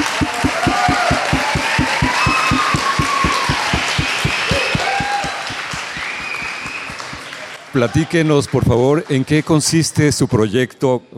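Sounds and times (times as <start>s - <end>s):
faint cheers or whistles: 0.0s - 8.2s
crowd applauding: 0.0s - 9.7s
speech: 7.8s - 11.1s.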